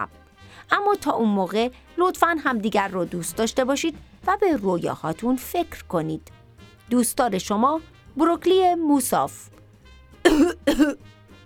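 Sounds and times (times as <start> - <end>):
speech: 0.0 - 9.6, 10.4 - 11.2
faint tonal sound: 0.0 - 11.4
person coughing: 10.3 - 11.0.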